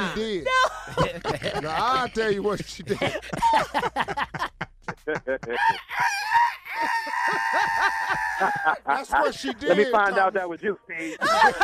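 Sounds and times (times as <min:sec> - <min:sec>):
laughter: 0:00.0 - 0:10.4, 0:11.0 - 0:11.6
speech: 0:00.2 - 0:11.6
human voice mimicking a rooster's crow: 0:05.6 - 0:08.8.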